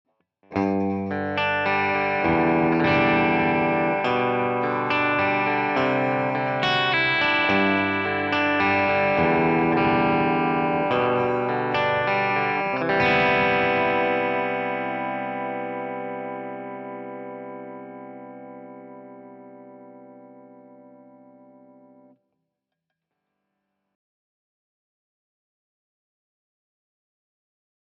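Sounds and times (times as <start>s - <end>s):
Schecter SLS Elite PT bridge pickup: 0.5s - 22.2s.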